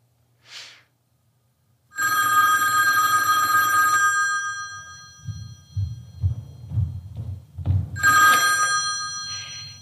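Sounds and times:
telephone bell ringing: 1.9s - 6.2s, 8.0s - 9.7s
low thumping: 5.2s - 8.2s.

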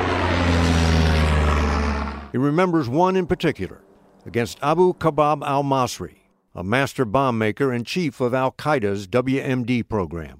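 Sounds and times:
propeller engine droning: 0.0s - 5.9s
speech: 2.3s - 10.3s.

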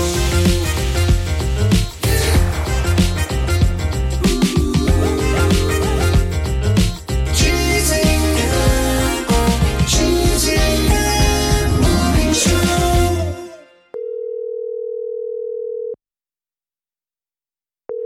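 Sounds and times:
music: 0.0s - 14.0s
telephone ringing through the line as a steady electronic tone: 13.9s - 16.0s.

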